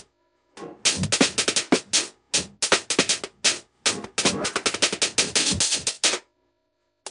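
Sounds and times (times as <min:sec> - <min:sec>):
breakbeat drums: 0:00.6 - 0:06.2.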